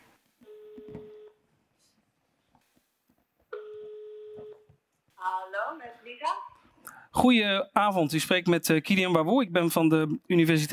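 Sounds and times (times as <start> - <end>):
telephone ringback tone on an outgoing call: 0.4 - 1.4, 3.6 - 4.6
speech: 7.2 - 10.7.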